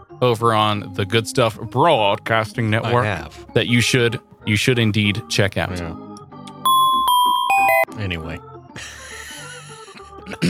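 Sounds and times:
speech: 0:00.2 - 0:06.0, 0:08.0 - 0:09.0, 0:10.3 - 0:10.4
two-note doorbell ding-dong chime: 0:06.6 - 0:08.0.

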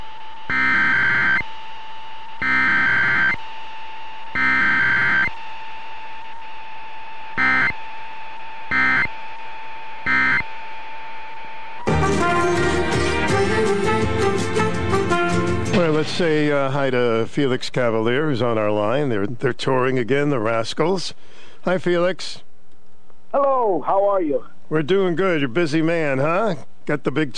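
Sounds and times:
faint steady hum: 0:00.0 - 0:11.9, 0:16.2 - 0:27.3
emergency alert system tones: 0:00.0 - 0:12.0
music: 0:11.8 - 0:16.5
speech: 0:16.2 - 0:22.5, 0:23.3 - 0:27.3.

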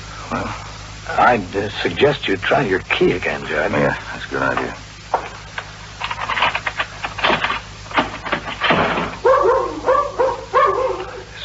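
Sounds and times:
low steady hum: 0:00.0 - 0:11.4
speech: 0:00.3 - 0:04.8
dog barking in a 14th-floor apartment: 0:09.2 - 0:11.3.

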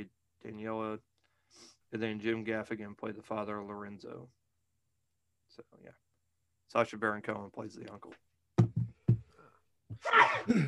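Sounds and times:
speech: 0:00.0 - 0:04.4, 0:05.6 - 0:06.0, 0:06.7 - 0:08.3, 0:09.9 - 0:10.6
person sneezing: 0:10.0 - 0:10.6.

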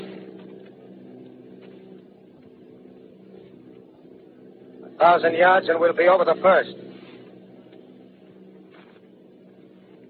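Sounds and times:
airplanes circling overhead with droning engines: 0:00.0 - 0:10.0
speech: 0:05.0 - 0:06.8.

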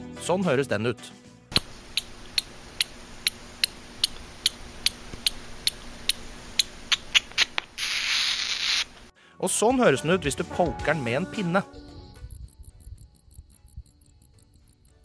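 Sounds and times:
speech: 0:00.3 - 0:01.2, 0:09.4 - 0:11.8
little brown bat clicking calls: 0:01.9 - 0:07.7, 0:12.2 - 0:15.0
little brown bat hissing buzz: 0:07.2 - 0:09.0.

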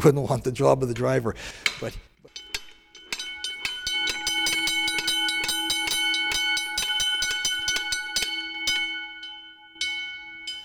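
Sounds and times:
speech: 0:00.0 - 0:02.1
horse-drawn fire wagon foot-pedal gong clanging: 0:02.3 - 0:10.6.

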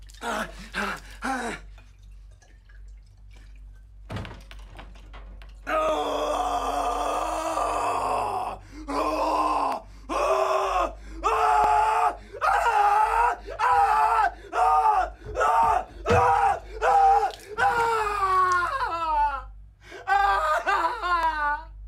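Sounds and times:
man gasping and groaning: 0:00.1 - 0:01.8, 0:06.0 - 0:11.4, 0:14.3 - 0:17.8
man with stab wounds screaming in agony in a film scene: 0:05.7 - 0:21.7.

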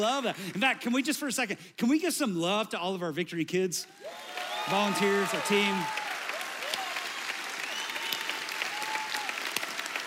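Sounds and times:
speech: 0:00.0 - 0:06.0
crowd applauding: 0:03.9 - 0:10.0.

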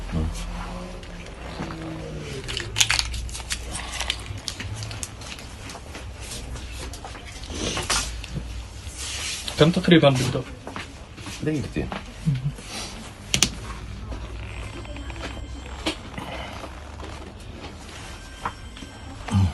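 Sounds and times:
faint voices murmuring: 0:00.0 - 0:19.5
low hum: 0:00.0 - 0:19.5
plastic test kit bag crinkling and rustling as it's handled: 0:02.4 - 0:05.7
speech: 0:09.6 - 0:10.6, 0:11.4 - 0:12.4.

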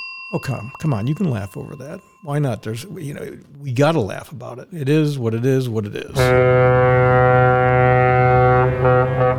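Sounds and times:
speech: 0:00.3 - 0:07.0
loud deep foghorn blast: 0:06.2 - 0:09.3.

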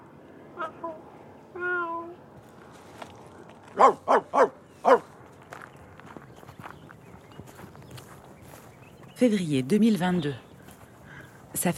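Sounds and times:
person imitating a cat meowing: 0:00.6 - 0:02.2
speech: 0:03.8 - 0:05.1, 0:09.2 - 0:10.4, 0:11.6 - 0:11.7.

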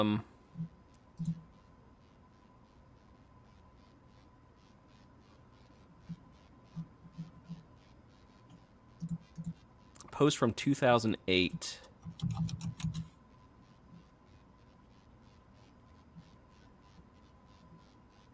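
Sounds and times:
speech: 0:00.0 - 0:01.4, 0:10.2 - 0:12.7
low steady hum: 0:00.0 - 0:18.3
computer mouse clicking on links: 0:00.9 - 0:01.5, 0:08.5 - 0:10.1, 0:11.8 - 0:13.1.

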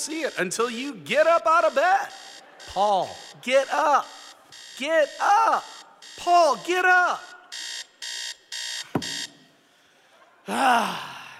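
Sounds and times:
speech: 0:00.0 - 0:04.2, 0:04.8 - 0:07.3, 0:10.5 - 0:11.1
alarm clock beeping: 0:00.0 - 0:09.6
thump: 0:08.9 - 0:09.2
person groaning drowsily: 0:10.5 - 0:11.3.

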